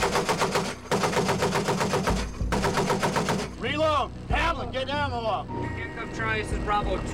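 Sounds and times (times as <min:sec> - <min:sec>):
rapid automatic small-arms gunfire during a convoy security mission in Iraq: 0:00.0 - 0:03.6
speech: 0:04.0 - 0:07.1.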